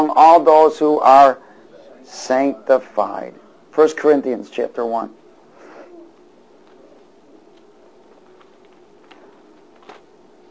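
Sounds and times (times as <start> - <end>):
speech: 0.0 - 1.4, 2.0 - 5.2
many pages of bibles rustling and flipping: 6.6 - 10.5.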